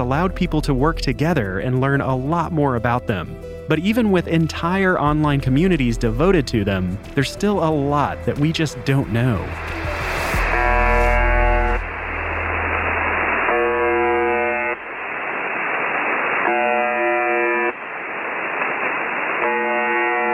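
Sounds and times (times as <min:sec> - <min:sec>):
speech: 0:00.0 - 0:10.0
loud hissing radio static: 0:08.1 - 0:20.3
shortwave radio station harsh buzzing tone: 0:10.2 - 0:20.3.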